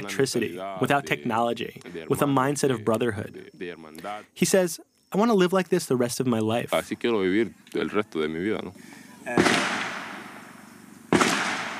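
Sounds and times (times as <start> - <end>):
speech: 0.0 - 9.7
loud gunshots with ringing echo: 9.3 - 11.7.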